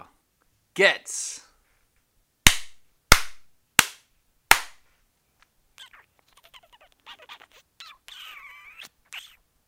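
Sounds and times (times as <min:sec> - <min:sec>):
speech: 0:00.8 - 0:01.5
sharp loud hand slaps: 0:02.5 - 0:04.8
high squeaky kissing noises: 0:05.8 - 0:09.4.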